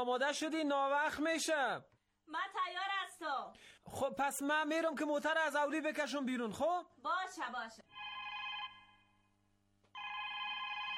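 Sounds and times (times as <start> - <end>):
speech: 0.0 - 7.8
electronic telephone ringing with a high-pitched warbling tone: 7.9 - 9.2, 9.9 - 10.9.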